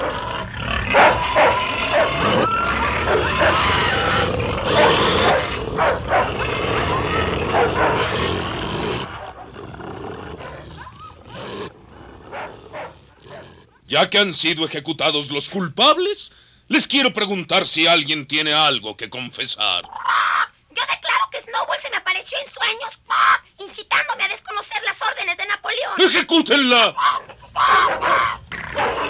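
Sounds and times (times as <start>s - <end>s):
dogs barking and snarling in an attack: 0.0s - 13.9s, 27.0s - 29.0s
speech: 14.0s - 20.3s, 21.5s - 29.0s.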